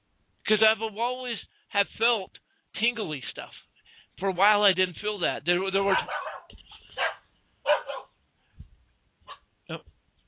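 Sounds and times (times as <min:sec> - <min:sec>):
speech: 0:00.5 - 0:03.6, 0:04.2 - 0:06.6, 0:09.7 - 0:09.9
dogs barking and yapping: 0:05.9 - 0:08.2.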